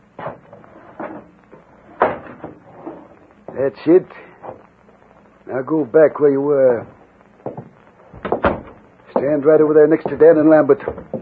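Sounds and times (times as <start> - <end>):
speech: 3.6 - 4.3, 5.5 - 7.0, 9.2 - 11.1
wooden window knocking and rattling as it is shut: 7.5 - 9.3.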